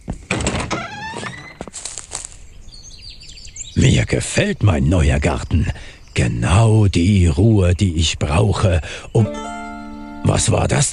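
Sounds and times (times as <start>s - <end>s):
door opening with a scrape and creaking hinges: 0.1s - 1.8s
speech: 3.8s - 9.5s, 10.2s - 10.9s.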